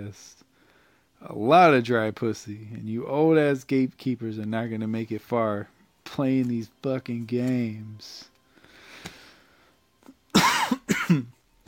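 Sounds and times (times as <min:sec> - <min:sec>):
speech: 0:00.0 - 0:00.4, 0:01.2 - 0:08.3, 0:11.1 - 0:11.4
faint noise: 0:00.0 - 0:11.6
loud harsh coughs: 0:10.3 - 0:11.4.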